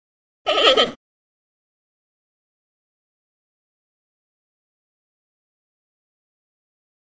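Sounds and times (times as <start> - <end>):
panda bleating: 0.5 - 1.0.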